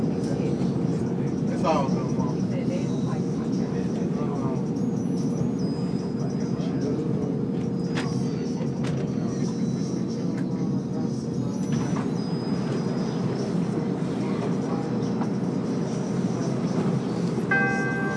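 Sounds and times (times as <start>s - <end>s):
low rumble of a moving elevated train heard from inside the car: 0.0s - 18.1s
brief high whine: 17.5s - 18.1s.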